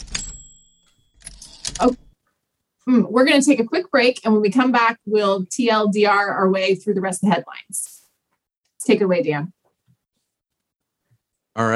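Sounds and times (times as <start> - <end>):
bright bell-like ring of a typewriter: 0.0 - 2.1
speech: 1.8 - 2.0, 2.9 - 8.0, 8.8 - 9.6, 11.6 - 11.7.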